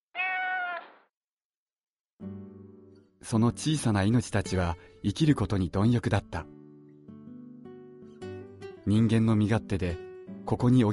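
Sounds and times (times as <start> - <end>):
cat meowing in a park: 0.2 - 1.0
speech: 3.2 - 6.6, 8.9 - 10.9.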